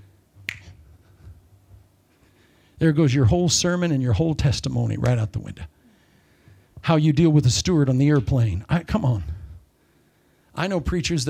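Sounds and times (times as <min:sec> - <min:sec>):
low hum: 0:00.0 - 0:11.2
finger snap: 0:00.4 - 0:01.4
speech: 0:02.8 - 0:05.7, 0:06.8 - 0:09.3, 0:10.6 - 0:11.2.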